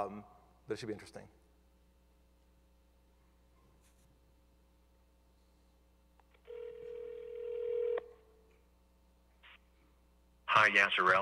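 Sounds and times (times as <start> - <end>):
speech: 0.0 - 1.4, 10.6 - 11.1
phone line tone as a customer places a call: 6.5 - 8.2.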